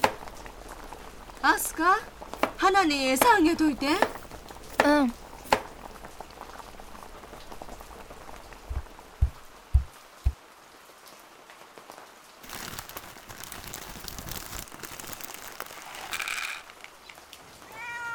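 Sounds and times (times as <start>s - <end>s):
steady rain: 0.0s - 18.1s
speech: 1.4s - 4.2s, 4.8s - 5.2s
low thuds or heavy drips: 8.5s - 10.4s.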